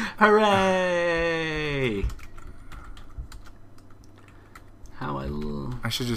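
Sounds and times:
speech: 0.2s - 2.2s, 5.0s - 6.1s
typing on a computer keyboard while reaching around a microphone: 1.8s - 6.1s.

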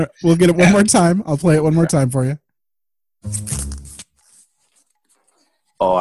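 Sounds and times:
speech: 0.0s - 2.4s, 3.2s - 3.7s, 5.8s - 5.9s
fabric of a dress tearing: 3.2s - 5.4s
torn cloth rustling: 3.2s - 5.8s.

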